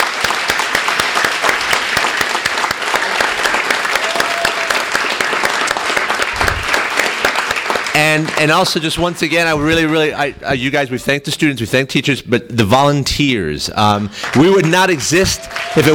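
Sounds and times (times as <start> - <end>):
large audience applauding: 0.0 - 10.1, 14.2 - 15.9
speech: 8.3 - 15.9.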